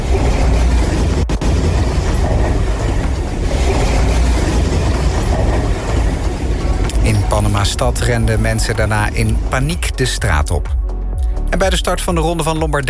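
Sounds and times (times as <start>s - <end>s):
crashing debris of buildings collapsing around a car: 0.0s - 7.0s
deep earthquake rumble: 0.0s - 10.9s
speech: 7.6s - 10.8s, 11.6s - 12.8s.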